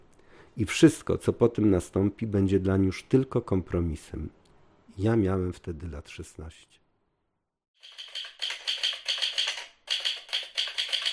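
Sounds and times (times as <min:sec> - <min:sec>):
speech: 0:00.6 - 0:04.4, 0:05.0 - 0:06.8
typewriter keys clattering: 0:07.8 - 0:11.1.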